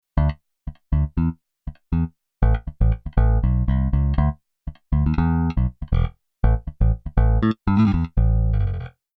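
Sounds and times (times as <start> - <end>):
funk bass guitar: 0.2 - 9.0.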